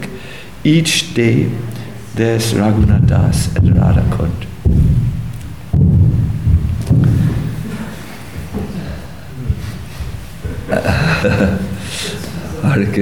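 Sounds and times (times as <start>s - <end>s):
speech: 0.6s - 4.8s, 12.8s - 13.0s
thunder rumbling: 2.6s - 8.0s
laughter: 7.2s - 13.0s.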